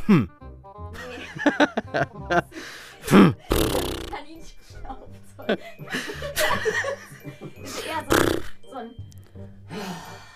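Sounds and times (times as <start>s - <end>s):
laughter: 1.0s - 2.7s, 5.4s - 8.1s
person imitating an angry rabbit snort: 3.1s - 4.2s, 8.1s - 8.6s
people talking casually: 3.8s - 5.6s.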